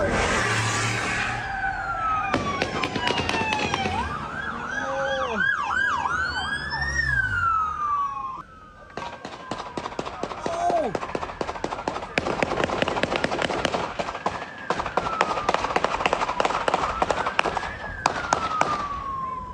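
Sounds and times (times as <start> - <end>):
siren wailing: 0.0 - 19.5
burst of gunshots in a shootout between police and a suspect: 2.2 - 4.2, 9.0 - 19.0.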